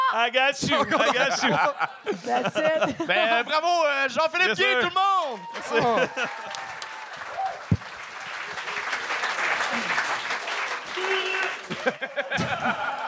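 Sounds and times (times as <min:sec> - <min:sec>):
speech: 0:00.1 - 0:06.5
laughter: 0:00.6 - 0:03.8, 0:05.6 - 0:06.8, 0:11.0 - 0:13.0
audience applause: 0:04.3 - 0:13.0.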